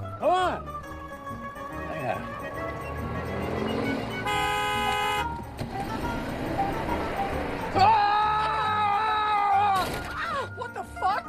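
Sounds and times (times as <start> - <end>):
busy street noise: 0.0 - 11.0
car horn honking at a traffic light: 2.9 - 8.0.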